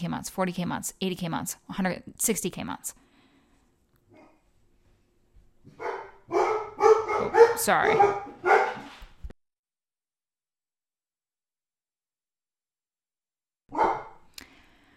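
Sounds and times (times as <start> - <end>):
speech: 0.0 - 3.0, 7.6 - 8.3
dogs barking excitedly: 5.7 - 9.0, 13.7 - 14.2.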